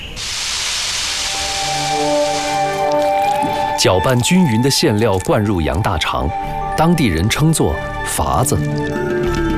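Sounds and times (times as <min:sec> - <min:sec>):
hot flaxseed oil sizzling over chopped lamb heart and lung filling: 0:00.0 - 0:03.4
speech: 0:03.8 - 0:09.4.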